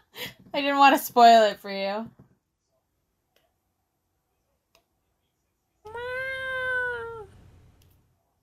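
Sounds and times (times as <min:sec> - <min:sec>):
speech: 0:00.6 - 0:02.2
cat giving a long drawn-out meow: 0:05.9 - 0:07.3.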